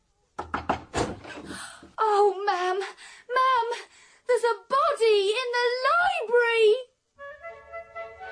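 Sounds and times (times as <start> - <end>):
loud urgent banging on a bedroom door: 0.4 - 1.5
speech: 2.0 - 6.9.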